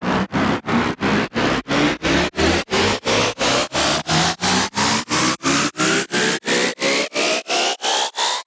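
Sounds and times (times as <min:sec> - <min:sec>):
riser sound effect: 0:00.0 - 0:08.4.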